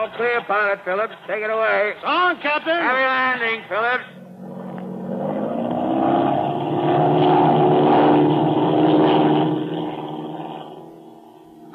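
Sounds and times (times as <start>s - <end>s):
speech: 0.0s - 4.1s
airplane engine drone during takeoff: 4.0s - 11.7s.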